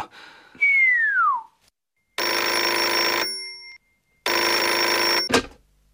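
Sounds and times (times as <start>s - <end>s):
falling whistle-like tone: 0.6s - 1.6s
loud telephone bell ringing: 2.2s - 5.3s.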